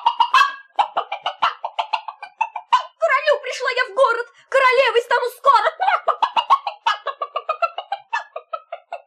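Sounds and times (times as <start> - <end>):
agitated turkeys gobbling: 0.0 - 3.0, 5.8 - 9.0
agitated chickens and roosters clucking: 0.0 - 3.5, 5.6 - 9.0
speech: 3.6 - 6.1.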